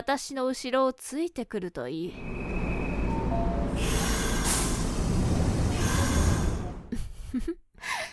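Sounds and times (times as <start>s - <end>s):
speech: 0.0s - 2.6s, 7.3s - 8.0s
train rumbling while coming to a stop: 2.1s - 7.4s
hissing train brakes: 2.2s - 6.9s.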